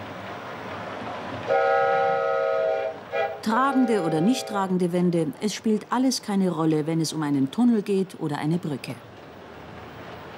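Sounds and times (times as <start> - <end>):
train rumbling along the tracks: 0.0 - 10.3
train horn blast: 1.5 - 4.6
speech: 3.4 - 9.1.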